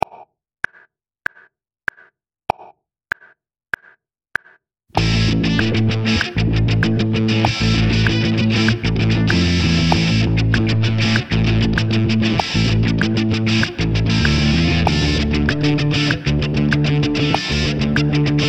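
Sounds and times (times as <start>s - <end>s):
improvised funk rhythm: 5.0s - 18.4s.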